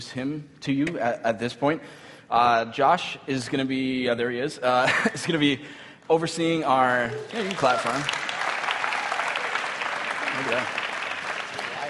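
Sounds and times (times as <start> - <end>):
speech: 0.0 - 8.2, 10.4 - 10.8
audience clapping for a new pastor: 7.0 - 11.8.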